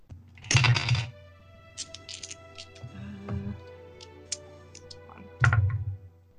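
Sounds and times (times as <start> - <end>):
dice clattering across a hard tabletop: 0.4 - 1.1, 1.8 - 2.8.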